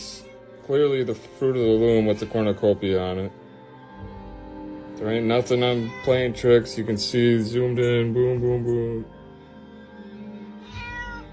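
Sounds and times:
speech: 0.7 - 3.4, 5.0 - 9.2
pet cat meowing: 5.8 - 6.4, 10.5 - 11.3.

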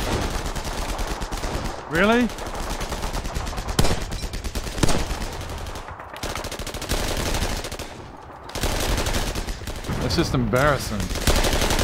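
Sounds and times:
rapid gunfire: 0.0 - 11.8
speech: 1.9 - 2.5, 10.1 - 11.2.

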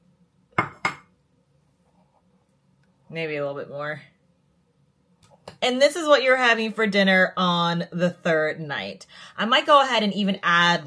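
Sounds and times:
spoon clinking against a salad bowl: 0.6 - 1.1
speech: 3.1 - 4.1, 5.6 - 10.8.

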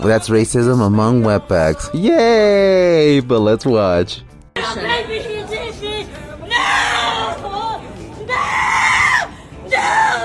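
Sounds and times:
speech: 0.0 - 4.4
crowd chatter: 4.6 - 8.7
woman screaming and squealing: 6.5 - 7.4, 8.3 - 10.2.

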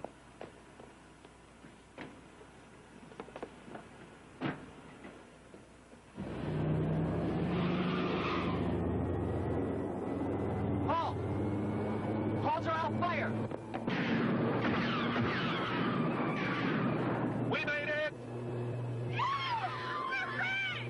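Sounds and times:
heavy bus engine rumbling: 2.2 - 20.8.

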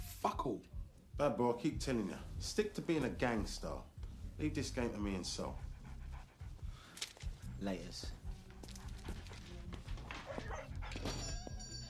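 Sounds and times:
steady noise: 0.0 - 11.8
speech: 0.2 - 5.7, 7.6 - 8.2
dog whimpering and yipping: 10.3 - 11.8.

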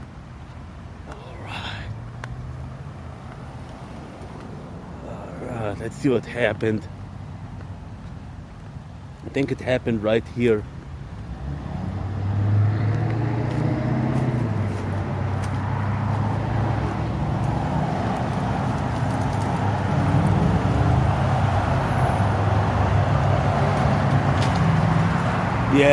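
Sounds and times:
roadside traffic engine rumble and tire roar from passing cars: 0.0 - 25.9
speech: 5.8 - 7.0, 9.3 - 10.8.

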